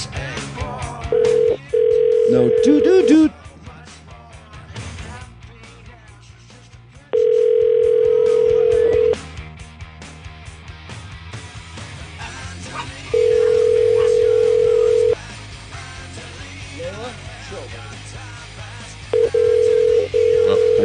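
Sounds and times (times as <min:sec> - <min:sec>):
telephone ringback tone during a call: 0:01.1 - 0:03.3, 0:07.2 - 0:09.2, 0:13.1 - 0:15.2, 0:19.2 - 0:20.8
speech: 0:02.3 - 0:03.4.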